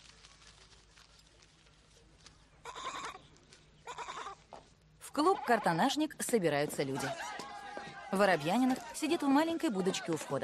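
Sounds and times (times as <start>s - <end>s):
goat bleating while grazing: 2.6s - 3.2s, 3.8s - 4.4s
speech: 5.2s - 7.3s, 8.1s - 10.4s.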